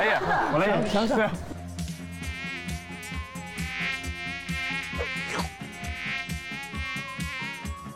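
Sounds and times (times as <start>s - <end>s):
speech: 0.0s - 1.5s
laughter: 0.0s - 1.6s
rhythmic musical backdrop with regular low thumps: 1.4s - 7.9s
person imitating a fly during a word-guessing game: 1.8s - 7.9s.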